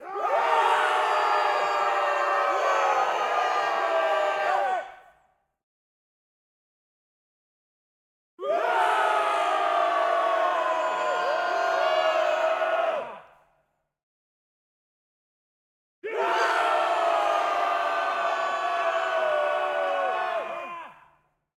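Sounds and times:
small mixed crowd shouting a charge attack outdoors: 0.0s - 5.2s, 8.4s - 13.5s, 16.0s - 21.2s.

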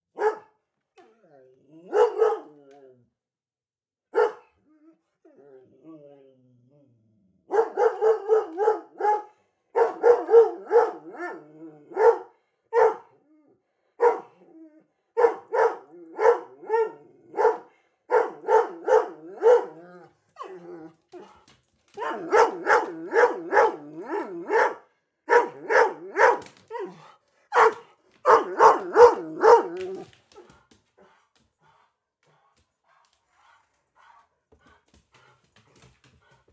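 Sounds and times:
German Short-Haired Pointer barking: 0.1s - 0.6s, 1.8s - 2.6s, 4.1s - 4.5s, 7.5s - 13.2s, 14.0s - 14.4s, 15.2s - 20.6s, 22.0s - 30.0s.

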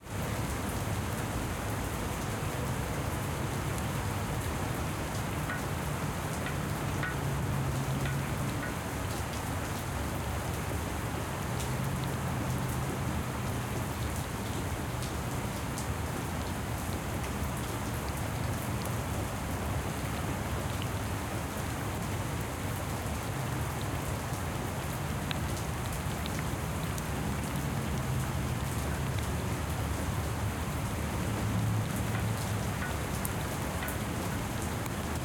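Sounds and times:
rain on concrete: 0.0s - 35.2s
drips on metal: 4.2s - 9.5s, 31.4s - 35.0s.

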